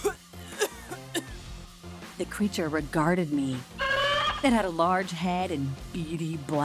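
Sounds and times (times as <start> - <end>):
short quiet throaty coughs: 0.0 - 1.4
speech: 2.2 - 3.7, 4.4 - 6.6.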